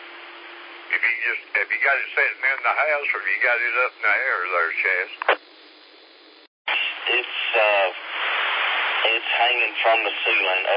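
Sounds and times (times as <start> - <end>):
radio reception static hiss: 0.1 - 10.7
faint tinny radio voice fragments: 0.9 - 5.5, 6.7 - 10.7
speech: 1.0 - 5.4, 9.2 - 10.7.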